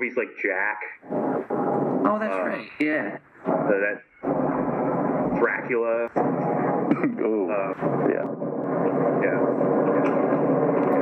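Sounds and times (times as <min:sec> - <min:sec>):
speech: 0:00.0 - 0:04.1, 0:05.4 - 0:10.8
airplane cabin noise during landing heard through a telephone line: 0:03.5 - 0:11.0.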